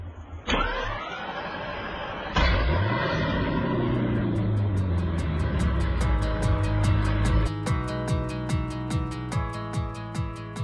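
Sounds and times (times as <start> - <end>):
minibus engine starting and pulling away: 0.0 - 10.6
steady rhythmic ticking: 4.3 - 10.6.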